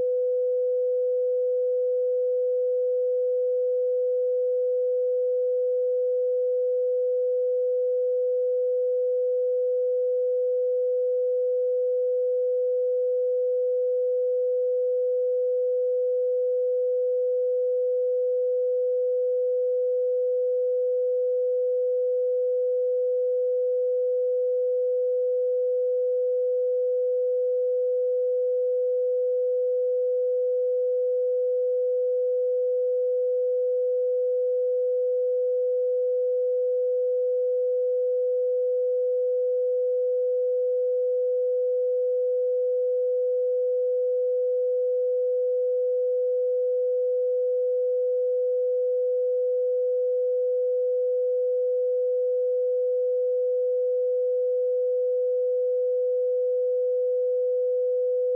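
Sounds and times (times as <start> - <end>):
500 Hz sine tone: 0.0 - 58.3.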